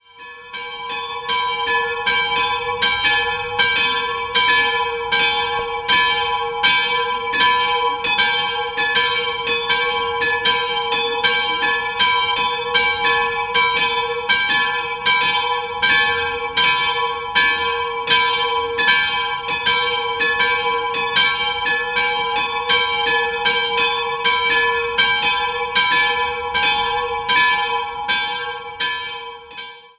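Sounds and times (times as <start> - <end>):
bells in Schönhofen: 0.0 - 29.9.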